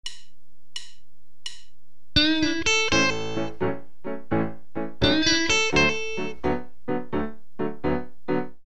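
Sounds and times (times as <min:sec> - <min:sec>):
guitar riff with typical blues phrasing: 0:02.2 - 0:08.5.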